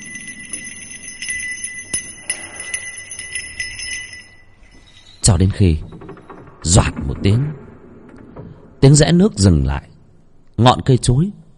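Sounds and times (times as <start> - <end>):
temple bell ringing: 0.0 - 6.4
speech: 5.2 - 5.9, 6.6 - 7.6, 8.8 - 9.9, 10.6 - 11.4.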